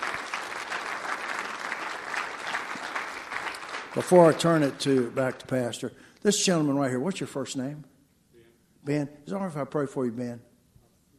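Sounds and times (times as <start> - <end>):
audience applause: 0.0 - 5.4
speech: 3.9 - 7.9, 8.8 - 10.5.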